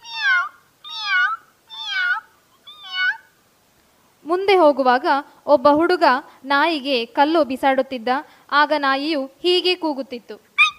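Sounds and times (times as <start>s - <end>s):
cat meowing: 0.0s - 3.3s
speech: 4.3s - 10.5s.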